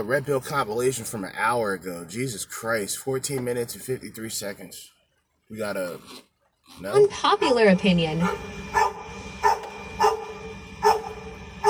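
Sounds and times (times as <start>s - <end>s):
speech: 0.0s - 8.9s
dog barking: 8.2s - 11.6s.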